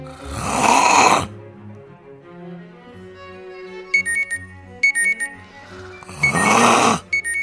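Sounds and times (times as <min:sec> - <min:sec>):
person snoring loudly: 0:00.0 - 0:01.3, 0:05.6 - 0:07.1
tinkling alarm clock melody: 0:04.0 - 0:06.5, 0:07.1 - 0:07.4.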